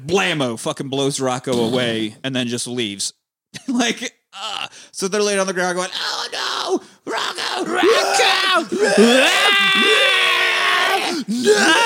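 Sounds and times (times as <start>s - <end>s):
speech: 0.0s - 10.2s, 11.3s - 11.8s
person screaming guttural scream imitating an anguished howl: 4.4s - 4.8s, 5.9s - 11.8s.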